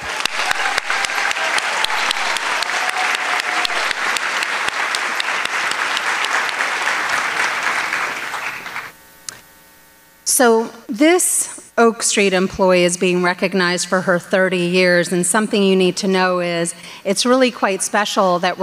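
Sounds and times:
crowd clapping: 0.0s - 9.0s
speech: 10.4s - 18.6s.

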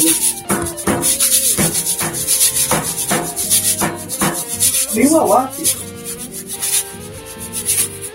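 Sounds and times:
hand rubbing a wall played as a percussion instrument: 0.0s - 8.1s
speech: 5.0s - 5.8s.

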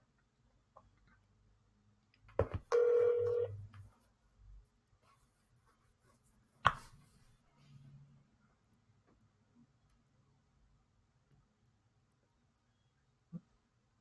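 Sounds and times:
phone ringing as an outgoing call is placed: 2.4s - 3.6s.

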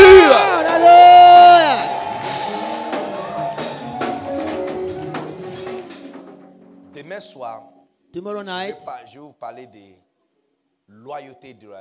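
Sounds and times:
church audience shouting and whooping joyfully: 0.0s - 6.1s
speech: 7.6s - 10.0s, 10.9s - 11.7s.

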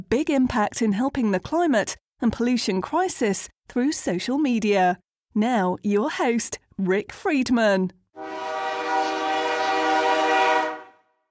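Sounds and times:
speech: 0.0s - 8.5s
loud sustained train horn blaring: 8.2s - 11.2s.

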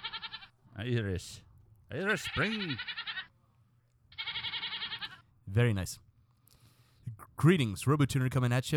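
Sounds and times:
Nubian goat bleating: 0.0s - 0.5s, 1.9s - 3.3s, 4.1s - 5.3s
speech: 0.8s - 3.0s, 5.5s - 6.0s, 7.4s - 8.7s.

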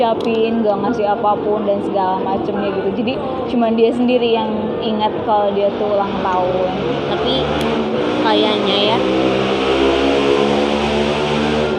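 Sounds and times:
speech: 0.0s - 10.0s
loud motorcycle engine revving: 4.5s - 11.7s.

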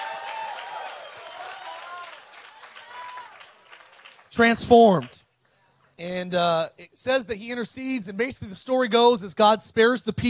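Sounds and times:
many voices shouting and cheering together: 0.0s - 5.1s
audience clapping steadily: 0.0s - 5.2s
speech: 4.4s - 5.2s, 6.0s - 10.2s.

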